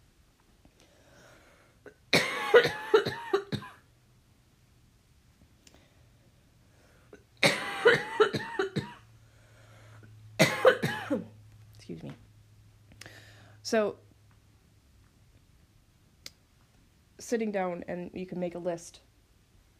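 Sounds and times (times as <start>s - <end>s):
person coughing: 1.9s - 3.8s, 7.2s - 9.0s, 10.4s - 11.3s
speech: 13.7s - 14.0s, 17.3s - 19.1s.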